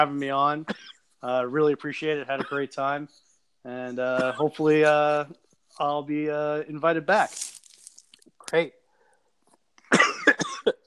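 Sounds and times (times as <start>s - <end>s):
speech: 0.0s - 7.6s, 8.5s - 8.8s
coughing: 0.6s - 1.1s, 2.3s - 2.8s, 4.0s - 4.8s, 9.8s - 10.8s.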